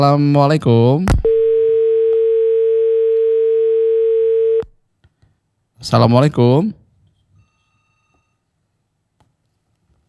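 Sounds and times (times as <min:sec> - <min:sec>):
speech: 0:00.0 - 0:01.2, 0:05.8 - 0:06.8
telephone click: 0:01.1 - 0:01.7
telephone line tone as call is picked up: 0:01.6 - 0:04.7.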